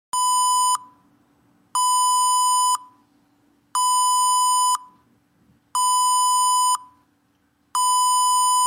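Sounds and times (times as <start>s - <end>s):
intermittent beep: 0.2s - 1.1s, 1.8s - 3.1s, 3.7s - 5.0s, 5.8s - 7.1s, 7.8s - 8.6s.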